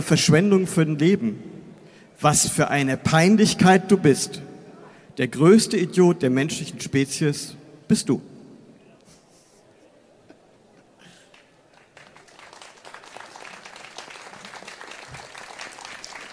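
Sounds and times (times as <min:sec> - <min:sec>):
speech: 0:00.0 - 0:01.5, 0:02.2 - 0:04.5, 0:05.2 - 0:08.3
audience clapping hesitantly: 0:11.3 - 0:16.3.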